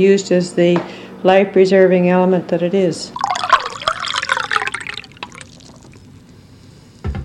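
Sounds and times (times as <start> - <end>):
speech: 0.0 - 3.2
drinking water being sipped: 3.1 - 6.3
drinking water from the Assiniboine River pouring into a glass: 3.2 - 6.2.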